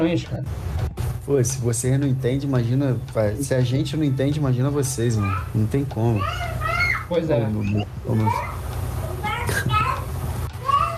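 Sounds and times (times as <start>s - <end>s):
speech: 0.0s - 0.7s, 1.3s - 8.6s
steady low hum: 0.0s - 10.9s
child shouting: 5.2s - 5.5s, 6.2s - 7.2s, 8.3s - 8.6s, 9.2s - 10.9s.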